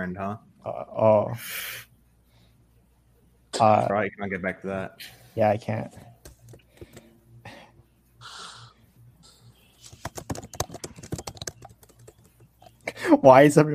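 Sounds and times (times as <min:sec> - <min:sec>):
speech: 0:00.0 - 0:01.9, 0:03.6 - 0:06.1, 0:13.2 - 0:13.7
breathy noise: 0:06.6 - 0:09.7
rapid frantic typing on a computer keyboard: 0:09.8 - 0:12.8.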